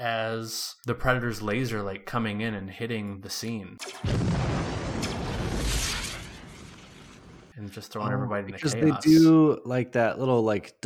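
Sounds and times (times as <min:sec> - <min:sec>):
speech: 0:00.0 - 0:04.6, 0:07.6 - 0:10.8
flare exploding and launching into the air in a film scene: 0:03.9 - 0:07.5.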